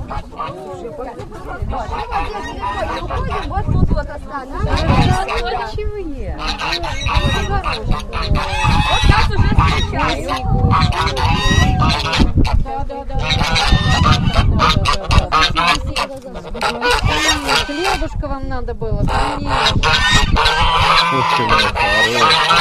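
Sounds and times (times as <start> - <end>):
flock of geese honking loudly: 0.0 - 3.7, 4.6 - 5.8, 6.4 - 18.2, 19.1 - 22.5
speech: 16.1 - 22.5.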